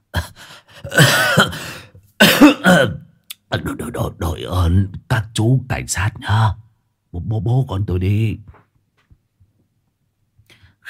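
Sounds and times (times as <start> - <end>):
old man in a violent coughing fit: 0.8 - 3.0
speech: 3.6 - 8.6.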